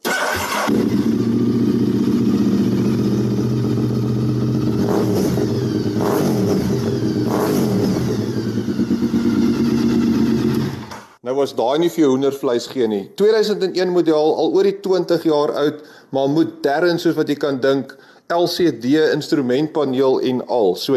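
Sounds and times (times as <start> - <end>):
V-twin motorcycle engine idling and revving through exhaust pipe: 0.4 - 11.2
speech: 11.4 - 20.9.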